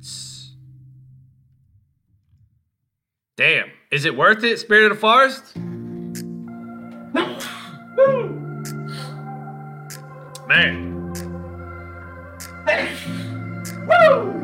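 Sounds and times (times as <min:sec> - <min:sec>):
speech: 0:03.4 - 0:05.7, 0:10.6 - 0:10.8
sustained musical tones: 0:05.6 - 0:14.4
person sneezing: 0:07.1 - 0:07.9, 0:12.7 - 0:13.4.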